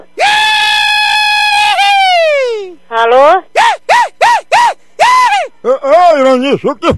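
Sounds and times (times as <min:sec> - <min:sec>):
man screaming: 0:00.0 - 0:02.8, 0:03.6 - 0:05.5
speech: 0:06.4 - 0:06.9.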